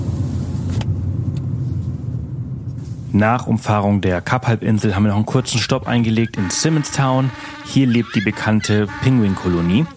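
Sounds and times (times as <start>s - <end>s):
car engine and road rumble on a road trip around the Cape Peninsula: 0.0s - 6.4s
speech: 3.1s - 9.9s.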